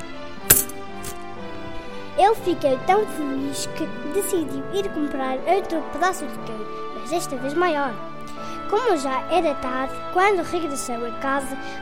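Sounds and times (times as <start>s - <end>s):
gold coins clinking: 0.5s - 1.2s
speech: 2.2s - 8.1s, 8.7s - 11.7s.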